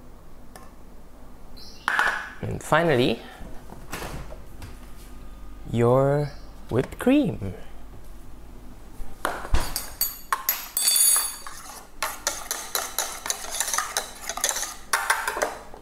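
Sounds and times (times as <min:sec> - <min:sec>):
speech: 0:02.4 - 0:03.4, 0:05.7 - 0:07.6
spoon clinking against dishes and glassware while preparing dalgona coffee: 0:09.7 - 0:15.5.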